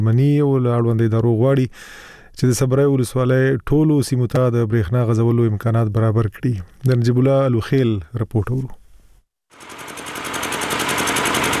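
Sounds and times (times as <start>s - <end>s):
speech: 0.0s - 8.8s
old electricity generator running in a bazaar in Yaqubi, Sabari district: 9.5s - 11.5s.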